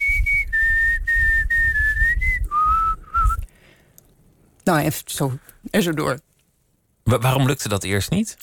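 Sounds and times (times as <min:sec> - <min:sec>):
person whistling a short tune with the mouth: 0:00.0 - 0:03.5
speech: 0:04.7 - 0:06.3, 0:07.1 - 0:08.4.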